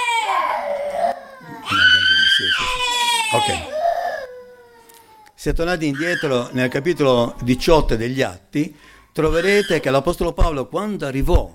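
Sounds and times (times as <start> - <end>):
baby crying: 0.0 - 7.9, 9.2 - 10.0
speech: 3.4 - 3.7, 5.4 - 11.5.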